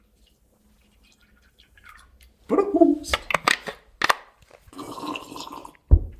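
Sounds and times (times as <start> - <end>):
water poured into a glass: 1.0 - 3.1, 4.7 - 5.9
people talking: 2.5 - 3.3.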